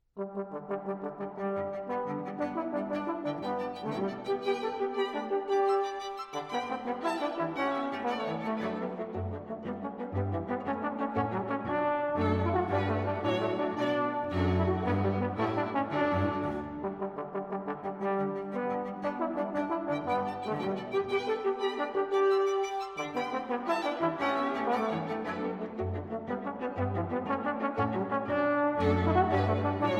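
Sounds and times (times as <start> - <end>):
string quartet: 1.4 - 29.9
solo cello: 2.1 - 17.0, 20.1 - 29.9.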